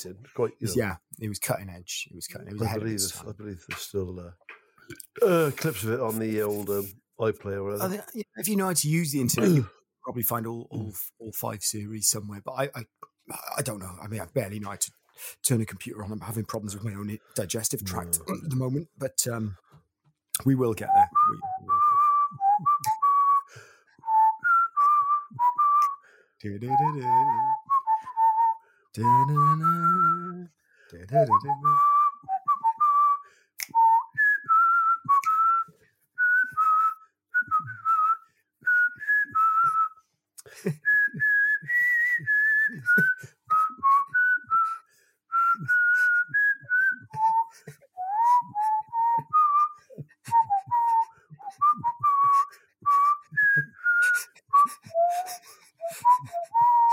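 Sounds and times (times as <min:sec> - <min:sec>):
speech: 0:00.0 - 0:19.7, 0:20.4 - 0:21.8, 0:26.4 - 0:27.6, 0:29.0 - 0:31.9
man chuckling or humming: 0:09.2 - 0:09.7, 0:40.4 - 0:40.9, 0:42.7 - 0:43.3, 0:54.0 - 0:56.6
drunk man whistling a theme tune: 0:20.8 - 0:30.5, 0:31.1 - 0:56.9.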